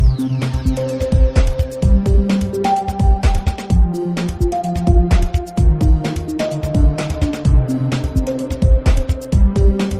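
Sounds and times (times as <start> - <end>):
menu theme music: 0.0 - 9.9.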